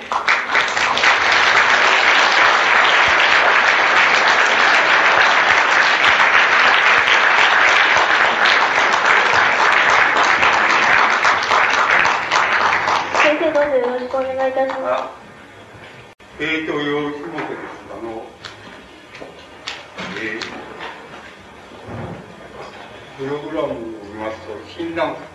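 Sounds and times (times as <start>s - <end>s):
large audience applauding a lecturer: 0.0s - 14.1s
speech: 14.3s - 15.3s, 16.4s - 17.7s, 23.2s - 25.3s.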